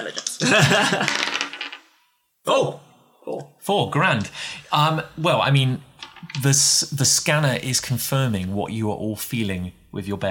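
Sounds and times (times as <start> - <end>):
speech: 0.0 - 1.3, 2.4 - 10.2
dice rolling on a table: 0.0 - 2.0, 6.0 - 6.8.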